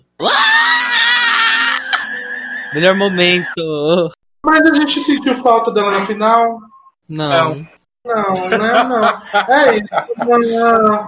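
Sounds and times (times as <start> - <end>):
singer's panther-like scream with a rough growling edge played back: 0.2 - 3.6
laughter: 0.9 - 3.6, 8.4 - 10.8
speech: 2.8 - 11.0.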